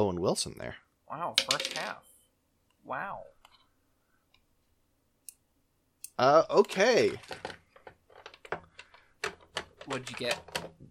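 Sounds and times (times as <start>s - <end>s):
speech: 0.0s - 2.1s, 2.8s - 3.4s, 6.2s - 7.6s, 9.9s - 10.8s
dice box being put away with clicks, knocks and rattling thumps: 1.4s - 2.0s, 6.7s - 10.8s.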